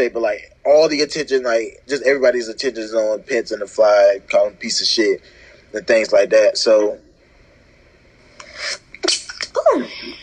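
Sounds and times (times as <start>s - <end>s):
speech: 0.0s - 7.1s, 8.6s - 10.2s
person sneezing: 8.4s - 10.2s.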